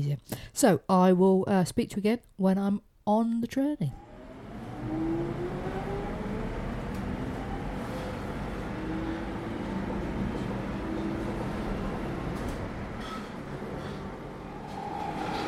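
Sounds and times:
speech: 0:00.0 - 0:04.1
faint rising and falling whines of train motors: 0:04.0 - 0:09.3
London Underground Jubilee line train rumbling approaching Canons Park station: 0:04.1 - 0:15.4.

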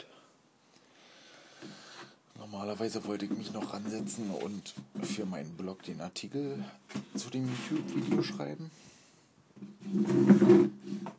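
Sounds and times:
speech: 0:02.5 - 0:08.9, 0:09.8 - 0:10.8
chair being dragged and set in place: 0:02.8 - 0:05.3, 0:06.9 - 0:08.6, 0:09.6 - 0:11.1.

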